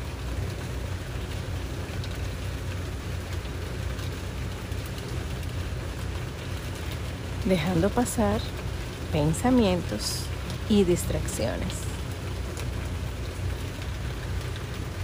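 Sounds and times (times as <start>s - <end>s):
steady dense rain pouring: 0.0s - 15.0s
speech: 7.4s - 11.9s.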